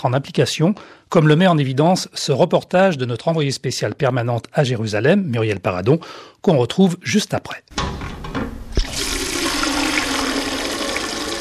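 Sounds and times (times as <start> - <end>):
speech: 0.0 - 8.0
water pouring from a large container into a pot: 8.8 - 11.3.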